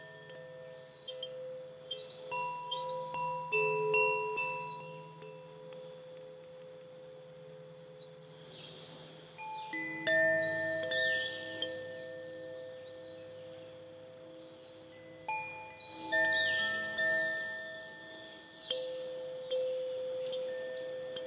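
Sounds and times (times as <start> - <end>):
silver-tuned wind chimes ringing: 0.0 - 21.2.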